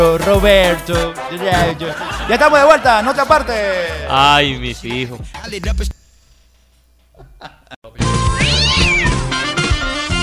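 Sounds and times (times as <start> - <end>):
speech: 0.0 - 6.0
laughter: 1.6 - 4.0, 7.2 - 7.8
kittens meowing loudly: 8.4 - 9.3.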